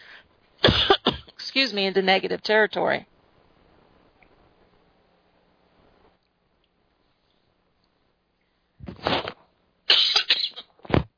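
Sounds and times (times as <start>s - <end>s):
person coughing from a tickle in the throat: 0.6s - 1.3s, 9.9s - 10.7s
speech: 1.6s - 3.1s.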